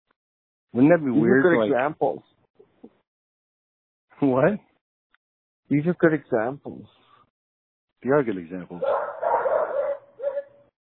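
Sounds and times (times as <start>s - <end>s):
speech: 0.7s - 2.4s, 4.2s - 4.7s, 5.7s - 7.0s, 8.0s - 9.2s
dog barking: 8.8s - 10.7s.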